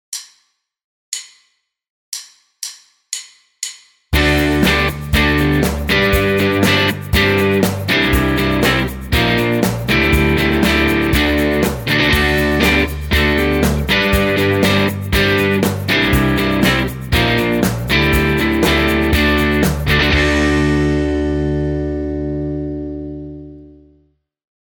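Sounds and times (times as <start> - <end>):
rhythm guitar in open G tuning: 4.2 - 23.6.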